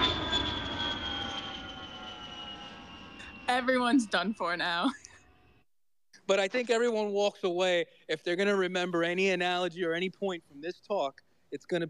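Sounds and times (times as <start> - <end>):
crashing airplane engine roar with high thin whine: 0.0 - 5.6
speech: 3.5 - 5.0, 6.3 - 11.8.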